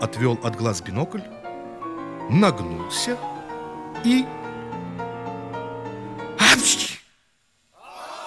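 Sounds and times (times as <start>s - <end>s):
speech: 0.0s - 1.4s, 2.3s - 3.4s, 4.0s - 4.4s
loud sneeze: 6.4s - 7.1s.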